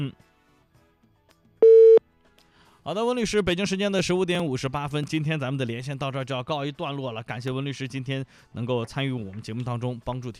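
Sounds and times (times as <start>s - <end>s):
speech: 0.0s - 0.3s, 2.9s - 10.3s
telephone busy tone after a call is hung up: 1.6s - 2.0s.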